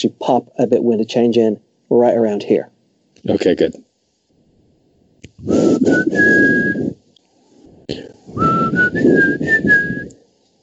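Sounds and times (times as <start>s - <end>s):
speech: 0.0s - 3.9s, 5.4s - 6.8s, 7.9s - 10.0s
person whistling a heavy metal power ballad phrase into a microphone: 5.4s - 6.9s, 8.4s - 10.1s.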